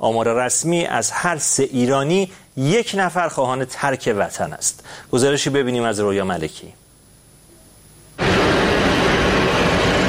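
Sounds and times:
speech: 0:00.0 - 0:06.8
jet engine roar of an airplane taking off: 0:08.2 - 0:10.0.

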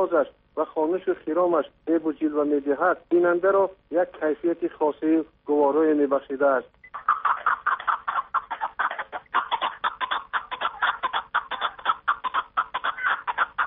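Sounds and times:
speech: 0:00.0 - 0:06.8
partridge calling in chattering clucks: 0:06.9 - 0:13.6.

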